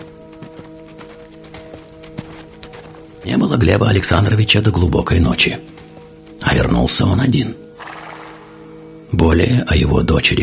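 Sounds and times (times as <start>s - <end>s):
horse hooves galloping away: 0.0s - 7.1s, 7.8s - 8.7s
speech: 3.2s - 5.8s, 6.6s - 7.6s, 9.1s - 10.4s.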